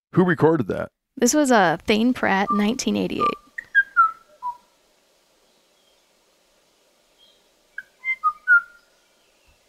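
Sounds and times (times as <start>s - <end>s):
speech: 0.1s - 3.4s
male Kauai o'o singing clear whistled notes: 2.2s - 4.8s, 5.4s - 6.0s, 7.1s - 9.6s.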